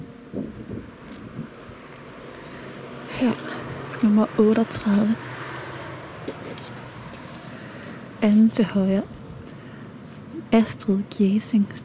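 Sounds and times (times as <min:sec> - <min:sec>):
wind on a street in Aarhus Denmark on a wet October day: 0:00.0 - 0:07.2
speech: 0:03.2 - 0:05.3, 0:08.2 - 0:09.1, 0:10.5 - 0:11.8.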